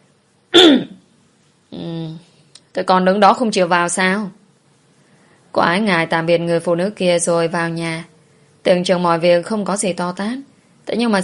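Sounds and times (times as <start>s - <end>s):
man clearing his throat: 0.5s - 1.0s
speech: 2.8s - 4.4s, 5.5s - 11.2s.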